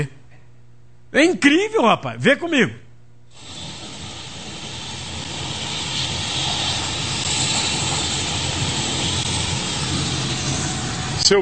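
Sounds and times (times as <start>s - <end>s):
speech: 1.1s - 3.5s, 11.3s - 11.4s
helicopter roaring overhead: 3.4s - 11.3s.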